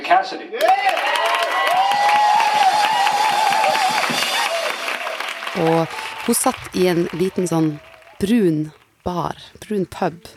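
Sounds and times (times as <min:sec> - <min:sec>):
speech: 0:00.1 - 0:01.2, 0:05.6 - 0:10.3
audience applause at a small concert welcoming a singer: 0:00.6 - 0:09.0.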